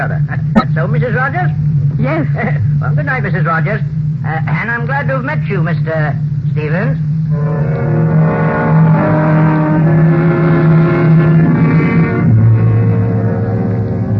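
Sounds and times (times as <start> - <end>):
speech: 0.0 - 8.1
car engine droning while driving: 7.2 - 14.1.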